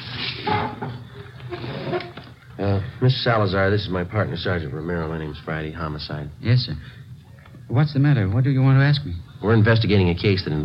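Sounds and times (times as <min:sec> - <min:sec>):
chairs scraping and bumping across a kitchen floor: 0:00.0 - 0:02.4
faint squeaks: 0:01.0 - 0:02.4
speech: 0:02.6 - 0:07.0, 0:07.7 - 0:10.6.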